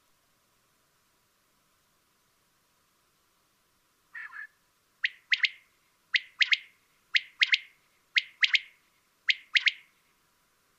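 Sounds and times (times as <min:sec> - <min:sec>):
Common quail giving ringing three-note phrases: 0:04.2 - 0:09.9.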